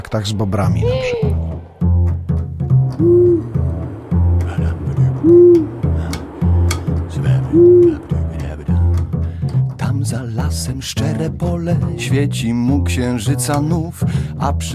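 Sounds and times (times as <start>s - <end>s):
speech: 0.1s - 1.5s, 3.0s - 3.3s, 10.2s - 14.7s
steady low droning background: 1.3s - 10.9s
owl hooting: 2.9s - 8.7s.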